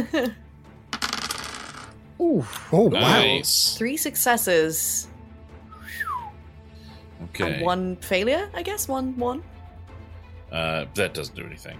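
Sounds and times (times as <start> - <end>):
speech: 0.0 - 0.4, 2.2 - 5.1, 7.4 - 9.5, 10.5 - 11.7
nine dice rolling across a table: 0.9 - 2.0.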